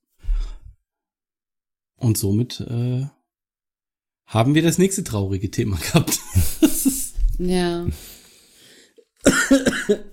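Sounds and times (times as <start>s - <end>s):
speech: 2.0s - 3.2s, 4.3s - 6.8s, 7.4s - 8.2s, 9.5s - 10.1s
laughter: 5.8s - 7.2s
harsh coughing: 9.2s - 10.1s.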